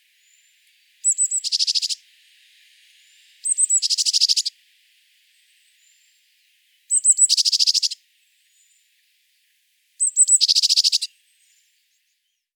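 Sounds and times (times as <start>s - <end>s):
Eurasian blue tit song, Cyanistes caeruleus, high notes into buzzy trill: 0.0s - 2.0s, 3.0s - 4.6s, 6.9s - 8.0s, 10.0s - 11.1s.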